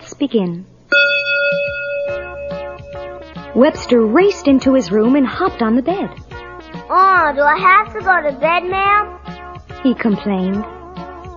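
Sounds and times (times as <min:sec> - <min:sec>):
speech: 0:00.2 - 0:01.0, 0:03.6 - 0:06.2, 0:06.9 - 0:09.2, 0:09.8 - 0:10.8
bright page-turn chime of a read-along storybook: 0:00.9 - 0:03.4.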